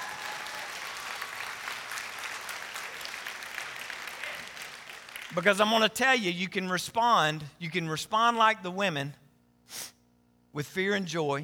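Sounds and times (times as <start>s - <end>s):
sustained applause from a large audience: 0.0s - 5.4s
speech: 5.3s - 9.9s, 10.6s - 11.4s.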